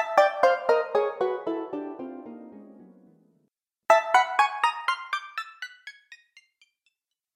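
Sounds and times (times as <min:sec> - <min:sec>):
bright video game sound effect: 0:00.2 - 0:03.2, 0:04.2 - 0:06.6.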